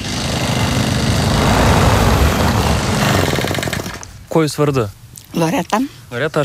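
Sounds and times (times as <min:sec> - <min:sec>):
motor mower mowing grass in a small town's street and park: 0:00.0 - 0:04.1
speech: 0:04.4 - 0:06.4.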